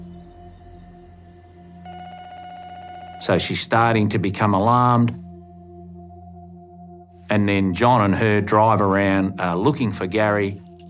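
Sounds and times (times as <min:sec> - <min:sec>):
bright rapidly pulsing tone: 0:00.0 - 0:03.6
steady electronic telephone tones: 0:01.9 - 0:03.5
speech: 0:03.2 - 0:05.2, 0:07.3 - 0:10.6.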